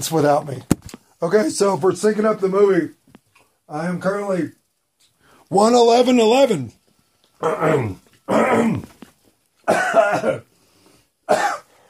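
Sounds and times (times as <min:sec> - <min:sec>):
speech: 0:00.0 - 0:03.0, 0:03.7 - 0:04.6, 0:05.5 - 0:06.8, 0:07.4 - 0:08.9, 0:09.7 - 0:10.5, 0:11.3 - 0:11.6
person coughing harshly: 0:07.4 - 0:08.9, 0:09.6 - 0:10.5, 0:11.3 - 0:11.8.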